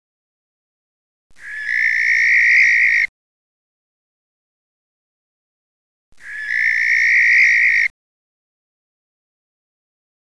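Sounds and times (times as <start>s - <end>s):
male barn owl screeching: 1.4s - 3.1s, 6.2s - 7.9s.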